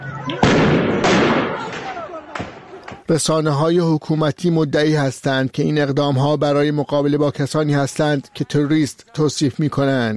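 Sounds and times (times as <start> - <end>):
gunshots of live ammunition fired by government forces at protesters in Iran: 0.3 - 3.0
speech: 3.1 - 10.1.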